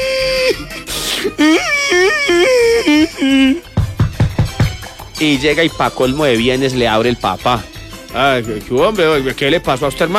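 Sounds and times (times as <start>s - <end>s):
adult voice mimicking a child's bawling and sobbing: 1.3s - 4.7s
speech: 1.4s - 3.7s, 5.2s - 10.1s.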